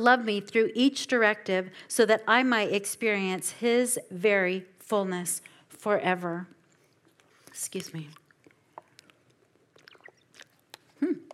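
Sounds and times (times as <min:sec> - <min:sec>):
speech: 0:00.0 - 0:06.6, 0:07.6 - 0:08.2
person slurping a drink: 0:07.2 - 0:11.3.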